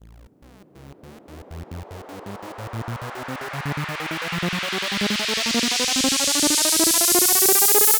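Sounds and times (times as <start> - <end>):
progressive house riser: 0.7 - 7.9.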